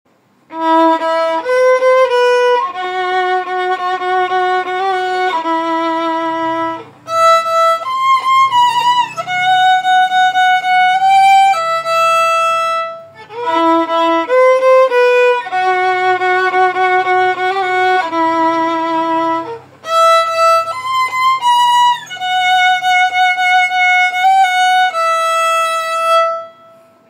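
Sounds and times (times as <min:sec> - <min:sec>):
phonk played on violin: 0:00.4 - 0:27.0.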